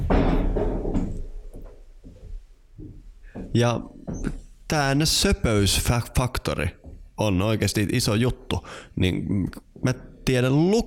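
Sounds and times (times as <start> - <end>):
cabin door blown violently open by wind: 0.0 - 1.6
cabin door knocking and rattling as it settles: 0.0 - 1.8
speech: 3.6 - 10.8.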